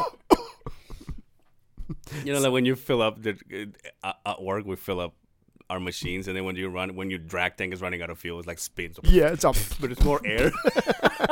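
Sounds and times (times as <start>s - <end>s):
voice imitating an old man coughing: 0.0s - 0.7s
speech: 2.1s - 11.2s
laughter: 10.2s - 11.2s.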